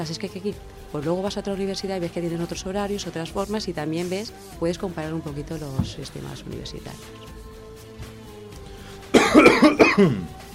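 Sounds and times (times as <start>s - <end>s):
speech: 0.0s - 7.4s, 9.4s - 10.4s
person coughing: 9.1s - 10.4s.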